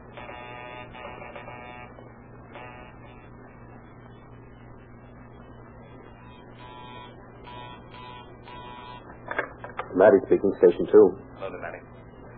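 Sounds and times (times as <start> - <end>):
old telephone ringers buzzing in testing: 0.0 - 3.3, 6.2 - 9.1
constant low electrical hum: 0.0 - 12.3
speech: 10.0 - 11.7.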